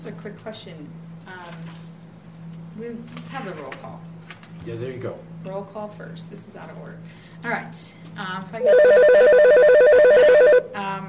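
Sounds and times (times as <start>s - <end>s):
speech: 0.0s - 1.9s, 2.8s - 9.4s, 10.8s - 11.0s
loud telephone ringing in a rapid electronic warble: 8.6s - 10.8s.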